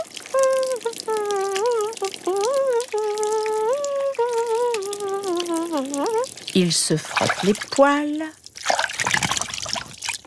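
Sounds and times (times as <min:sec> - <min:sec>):
hummed or whistled melody of sustained tones: 0:00.0 - 0:06.3
shower water running and splashing in a bathroom: 0:00.0 - 0:10.2
speech: 0:06.6 - 0:08.4.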